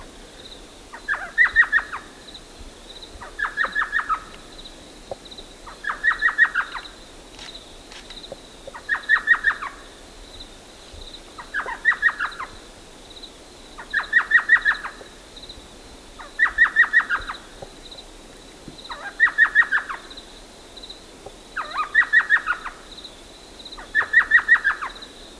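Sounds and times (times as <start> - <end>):
thrush nightingale singing staccato phrases: 0.0 - 18.2, 18.8 - 25.3.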